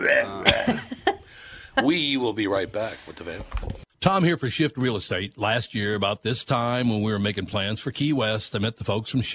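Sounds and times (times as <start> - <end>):
murmured vocal sounds: 0.0 - 1.5
person coughing: 0.4 - 1.0
speech: 1.8 - 9.3.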